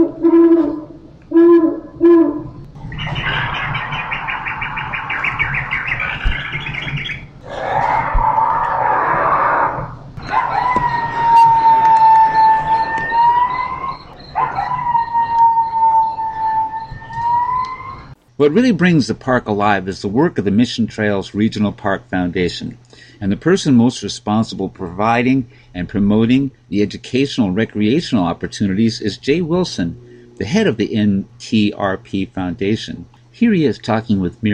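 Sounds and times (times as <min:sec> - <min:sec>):
coyote howling at a wildlife display: 0:00.0 - 0:18.2, 0:29.4 - 0:30.6
owl hooting: 0:00.0 - 0:18.2, 0:29.3 - 0:30.6
bright rapid bird chirping: 0:02.8 - 0:07.4, 0:12.0 - 0:18.2
speech: 0:18.4 - 0:34.5.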